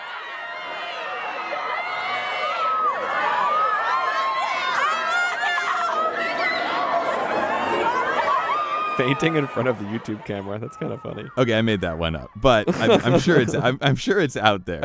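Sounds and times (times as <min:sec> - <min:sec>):
teenage girl fans screaming and crying: 0:00.0 - 0:11.6
laughter: 0:06.0 - 0:14.8
speech: 0:09.0 - 0:14.8.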